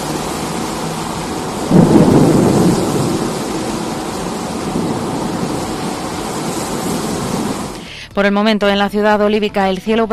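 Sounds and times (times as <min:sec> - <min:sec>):
thunder rumbling in a thunderstorm in Vigo: 0:00.0 - 0:07.8
heavy rain in a thunderstorm in Vigo: 0:00.0 - 0:08.1
speech: 0:08.2 - 0:10.1.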